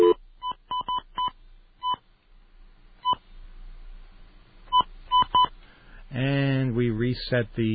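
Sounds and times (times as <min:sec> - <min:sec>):
touch-tone telephone beeps dialing an outside line: 0:00.0 - 0:02.0
faint low hum: 0:00.0 - 0:07.7
speech: 0:07.2 - 0:07.7.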